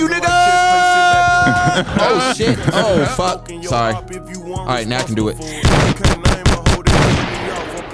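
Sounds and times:
laughter: 0:00.0 - 0:04.0
speech: 0:01.6 - 0:06.2
rapid gunshot sound effect like automatic fire: 0:05.6 - 0:07.8.

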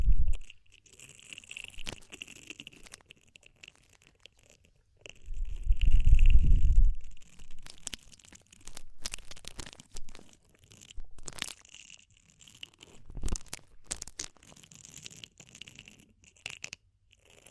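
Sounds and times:
heavier rumble: 0:00.0 - 0:00.4, 0:05.3 - 0:07.2
scratching and rustling at the ear: 0:00.0 - 0:17.4
sharp crackles and clicks: 0:00.0 - 0:17.4.

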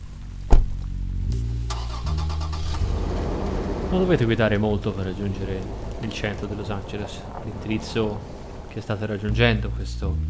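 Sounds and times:
car engine cranking with a click and starting: 0:00.0 - 0:10.2
speech: 0:03.9 - 0:10.2.

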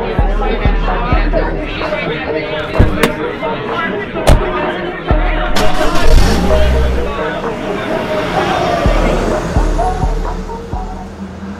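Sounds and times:
road noise: 0:00.0 - 0:11.5
car driving heard from inside: 0:02.6 - 0:11.5
dull thumps from bumps in the road: 0:02.8 - 0:03.3, 0:04.3 - 0:04.6.

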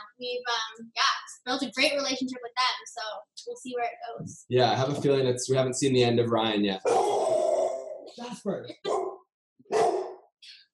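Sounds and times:
speech: 0:00.2 - 0:07.4, 0:08.1 - 0:09.0
dog barking: 0:06.8 - 0:07.2, 0:08.8 - 0:10.3
high-pitched dog yip: 0:08.9 - 0:10.2.

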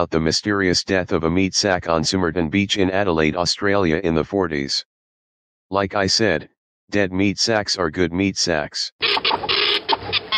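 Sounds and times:
speech: 0:00.0 - 0:04.9, 0:05.7 - 0:09.5
printer whirring and buzzing: 0:09.0 - 0:10.3.

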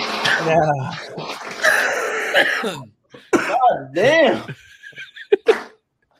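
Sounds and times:
speech: 0:00.4 - 0:01.3, 0:02.4 - 0:04.6
person sneezing: 0:01.6 - 0:03.6.

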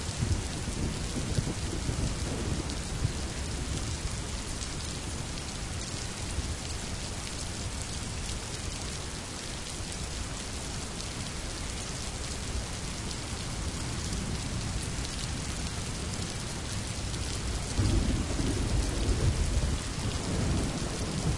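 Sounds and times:
rain storm downpour: 0:00.0 - 0:21.3.

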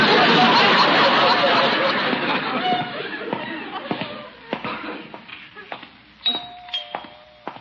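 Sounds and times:
crowd murmur and laughter: 0:00.0 - 0:05.8
front doorbell chiming: 0:06.2 - 0:07.6.

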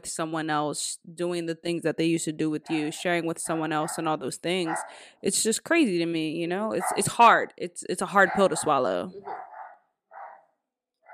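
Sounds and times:
speech: 0:00.0 - 0:09.5
dog barking sharply: 0:03.5 - 0:04.9, 0:06.8 - 0:07.1, 0:08.2 - 0:10.5.

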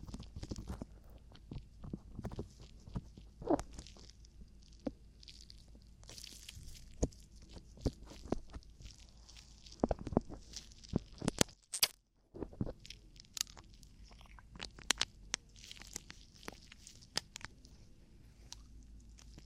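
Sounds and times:
low steady rumble: 0:00.0 - 0:11.3, 0:12.3 - 0:19.4
crackly ear-cleaning scratches, pops and rustles: 0:00.0 - 0:19.4.

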